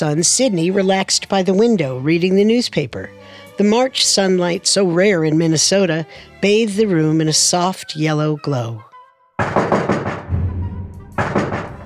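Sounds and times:
speech: 0:00.0 - 0:09.7
firm knocking on a wooden door: 0:09.4 - 0:11.8.

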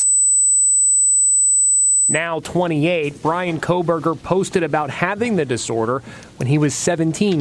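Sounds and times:
steady piercing high-pitched ringing tone simulating tinnitus: 0:00.0 - 0:02.2
speech: 0:02.1 - 0:07.3.

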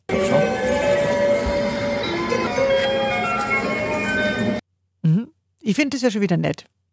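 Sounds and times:
bright electronic train station jingle melody: 0:00.1 - 0:04.6
speech: 0:05.7 - 0:06.7.

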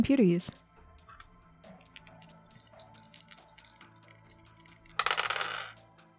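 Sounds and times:
speech: 0:00.0 - 0:00.6
dice rolling on a hard tabletop: 0:01.8 - 0:05.8.

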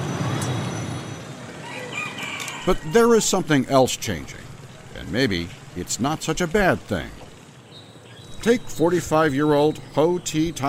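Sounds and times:
heavy trucks rumbling in dense traffic-jammed road traffic: 0:00.0 - 0:10.6
speech: 0:02.6 - 0:04.4, 0:05.0 - 0:07.2, 0:08.4 - 0:10.6.

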